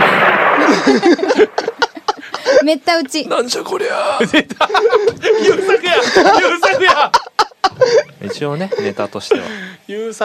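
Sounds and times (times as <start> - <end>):
cannon firing in a video game: 0.0 - 2.2
laughter: 0.6 - 2.7, 4.0 - 9.7
speech: 0.9 - 1.6, 2.6 - 10.2.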